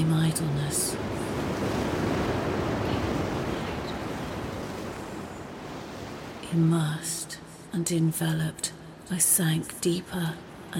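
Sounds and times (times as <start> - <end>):
speech: 0.0 - 1.9, 6.5 - 10.7
ocean waves surging: 0.0 - 7.2.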